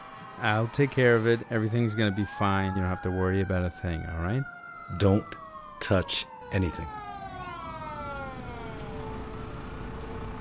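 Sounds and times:
full-size fire truck siren wailing with downward-sliding tone: 0:00.0 - 0:10.4
speech: 0:00.4 - 0:07.1.

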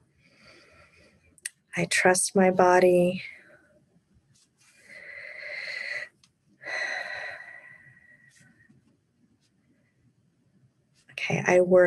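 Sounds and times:
speech: 0:01.8 - 0:03.4, 0:11.4 - 0:11.8
deep breath in: 0:04.8 - 0:08.4.

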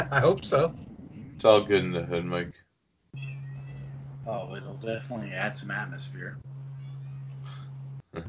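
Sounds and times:
speech: 0:00.0 - 0:03.3, 0:04.2 - 0:06.5
steady electrical hum: 0:00.0 - 0:08.2
cat meowing: 0:03.2 - 0:04.0.

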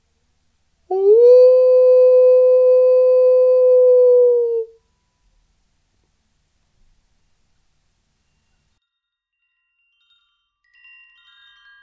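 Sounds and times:
dog or wolf howling: 0:00.9 - 0:04.7.

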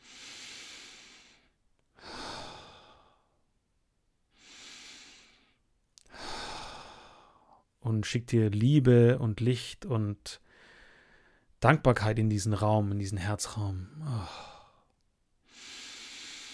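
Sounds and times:
slow deep breathing during a guided heart-focused meditation: 0:00.0 - 0:03.4, 0:04.3 - 0:07.6, 0:10.4 - 0:11.5, 0:15.5 - 0:16.5
speech: 0:07.8 - 0:10.4, 0:11.6 - 0:14.5.

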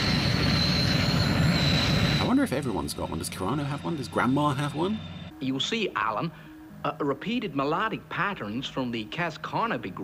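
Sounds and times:
small jet aircraft engine roaring: 0:00.0 - 0:05.3
thin constant high-pitched whine of small jet engine: 0:00.0 - 0:05.8
speech: 0:02.4 - 0:10.0.

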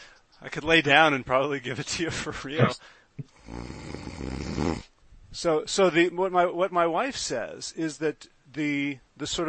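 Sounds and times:
speech: 0:00.4 - 0:04.4, 0:05.3 - 0:09.4
person imitating a long rattling guttural snore: 0:02.6 - 0:04.9.

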